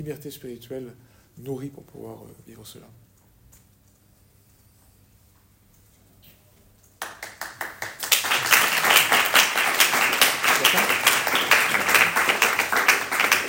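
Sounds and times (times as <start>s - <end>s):
speech: 0.0s - 3.1s
audience applause: 7.0s - 13.4s.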